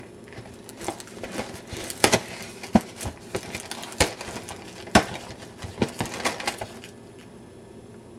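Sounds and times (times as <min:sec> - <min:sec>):
cereal box opening: 0:00.3 - 0:07.3.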